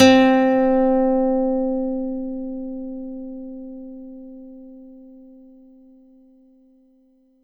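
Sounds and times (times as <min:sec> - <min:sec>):
synthesizer nylon guitar note C3: 0:00.0 - 0:05.4.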